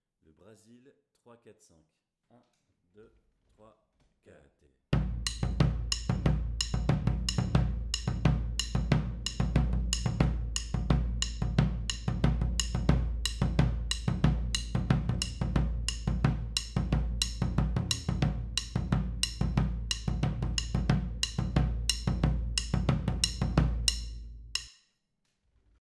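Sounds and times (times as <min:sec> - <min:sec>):
Brazilian batucada drumming: 0:05.0 - 0:24.7.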